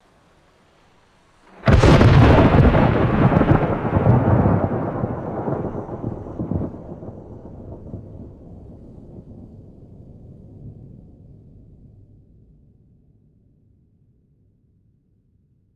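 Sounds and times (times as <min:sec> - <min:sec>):
explosive thunderclap with deep rolling rumble: 0:01.5 - 0:11.6.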